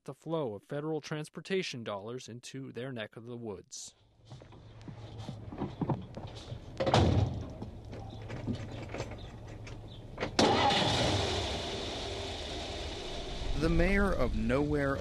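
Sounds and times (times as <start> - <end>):
speech: 0.0 - 4.6, 5.2 - 7.3, 13.6 - 14.9
car knocks and rattles on a rough logging road: 5.3 - 10.6
car engine noise: 7.6 - 14.9.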